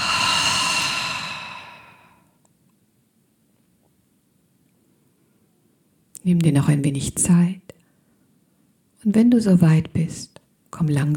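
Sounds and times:
slow exhale during a guided breathing exercise: 0.0 - 2.4
speech: 6.2 - 7.7, 9.0 - 11.1.

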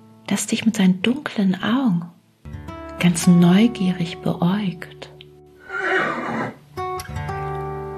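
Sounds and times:
speech: 0.3 - 2.2, 3.0 - 5.0
horse neighing: 5.6 - 6.6.

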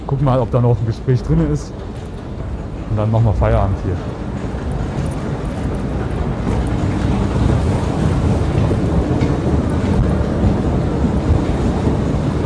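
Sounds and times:
subway train roaring at underground platform: 0.0 - 12.4
speech: 0.1 - 2.0, 2.9 - 4.3.

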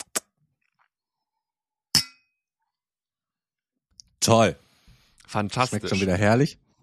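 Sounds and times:
glasses clinking in a toast: 2.0 - 2.3
speech: 4.2 - 4.6, 5.3 - 6.6.

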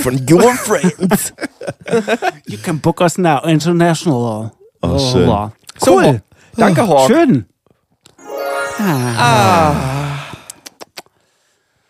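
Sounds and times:
speech: 0.0 - 7.5, 8.8 - 10.0
heavy breathing drawn out into a voiced sigh: 9.4 - 10.6.

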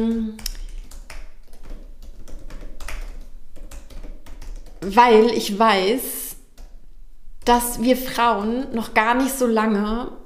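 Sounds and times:
speech: 0.0 - 0.5, 4.8 - 6.2, 7.5 - 10.2
typing on a computer keyboard while searching online: 0.0 - 4.9, 6.4 - 6.8.

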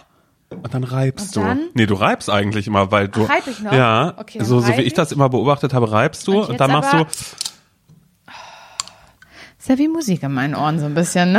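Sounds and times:
speech: 0.5 - 7.5, 9.6 - 11.3
energy drink can opening clicks: 7.1 - 7.6, 8.8 - 9.0.

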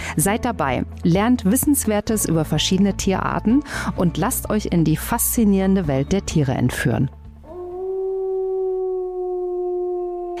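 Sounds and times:
speech: 0.2 - 7.2
wolf howling: 7.4 - 10.3.

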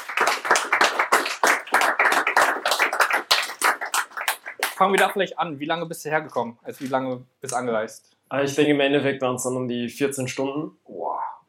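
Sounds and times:
crowd applauding: 0.0 - 5.2
speech: 4.8 - 10.9.

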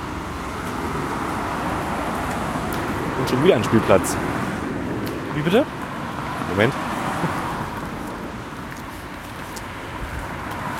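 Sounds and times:
many cars arriving off a ferry and rolling past: 0.0 - 10.7
speech: 3.2 - 4.3, 5.4 - 5.8, 6.5 - 6.8.

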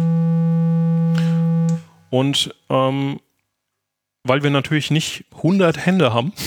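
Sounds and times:
modular synthesizer oscillator tone through an amplifier: 0.0 - 2.1
speech: 2.1 - 3.3, 4.2 - 6.4.

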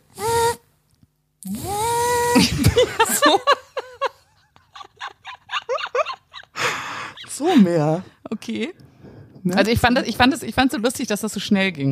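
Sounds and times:
voice imitating the tinny mechanical hum of a radiotherapy machine: 0.0 - 0.6, 1.4 - 2.8
speech: 2.4 - 3.0, 7.6 - 8.8, 9.4 - 11.9
laughter: 2.4 - 7.8.

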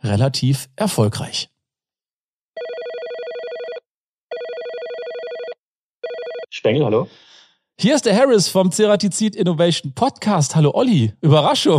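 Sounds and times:
speech: 0.1 - 1.5, 6.6 - 7.2, 7.8 - 11.7
phone line ringing for an outgoing call: 2.6 - 6.5.

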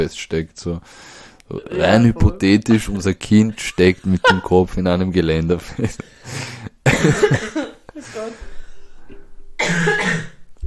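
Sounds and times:
speech: 0.0 - 8.5, 9.6 - 10.3
harsh raspy coughs with a throaty rattle: 6.8 - 7.8, 9.6 - 10.5.

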